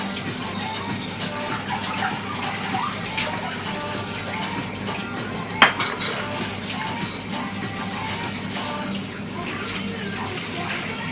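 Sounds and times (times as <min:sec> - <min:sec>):
steady running water from a tap: 0:00.0 - 0:11.1
crockery clinking while washing dishes by hand: 0:05.6 - 0:06.6.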